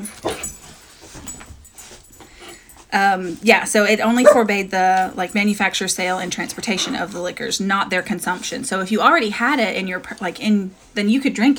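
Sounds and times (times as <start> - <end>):
dogs whimpering and yipping: 0.0 - 2.7, 4.2 - 4.5
speech: 2.9 - 11.5
dog whining cries: 4.2 - 4.4.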